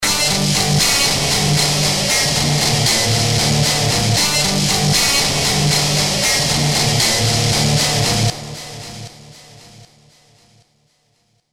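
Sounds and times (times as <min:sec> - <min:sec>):
hammer guitar: 0:00.0 - 0:10.6.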